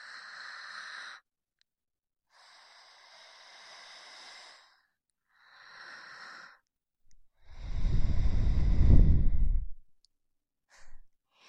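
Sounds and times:
slow heavy exhaled breath: 7.5s - 9.7s.

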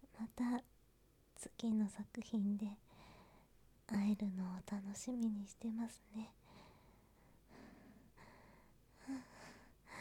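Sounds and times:
speech: 0.4s - 0.7s, 1.6s - 2.8s, 3.9s - 6.4s
heavy breathy panting with gasps: 6.4s - 9.9s.

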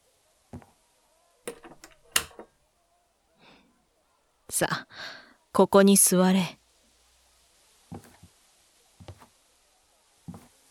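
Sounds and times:
door latch click: 1.5s - 2.5s
wooden door pushed shut: 1.5s - 2.5s
speech: 4.6s - 6.6s.

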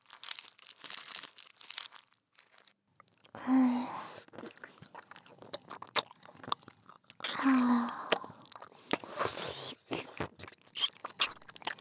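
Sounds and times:
wet clicking and crunching mouth noises eating a lollipop on a stick: 3.0s - 11.7s.

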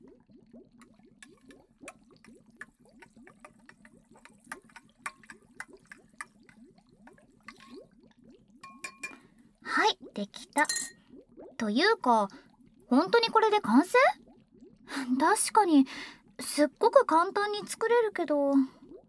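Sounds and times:
stirring a mixture in a bowl: 0.8s - 7.8s, 8.6s - 9.4s, 10.6s - 11.0s
light clinks of stirring in a bowl: 8.6s - 9.3s, 10.6s - 11.0s
speech: 10.2s - 11.0s, 11.6s - 14.2s, 15.0s - 18.8s.

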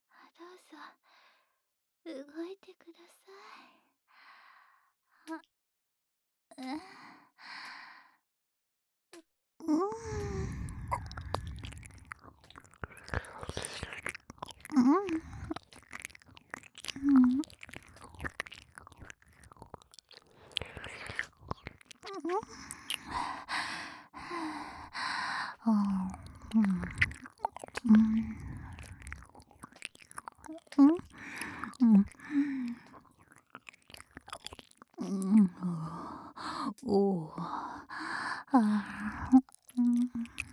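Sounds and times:
speech: 2.0s - 3.8s, 5.3s - 5.5s, 6.6s - 6.9s
ASMR ear-licking mouth sounds: 9.9s - 36.8s, 38.4s - 40.5s
quiet breathy bursts: 10.0s - 36.7s.

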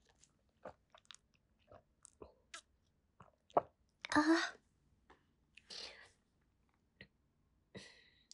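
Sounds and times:
person drinking in small sips with slurps and swallows: 0.0s - 3.8s.

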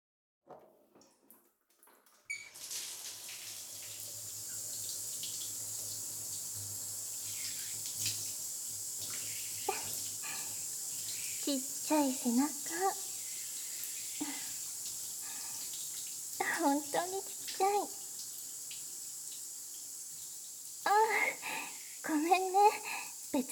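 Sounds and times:
water pouring to rinse someone's back during a bath: 0.9s - 23.5s
speech: 11.5s - 13.1s, 16.6s - 18.0s, 22.1s - 23.5s.

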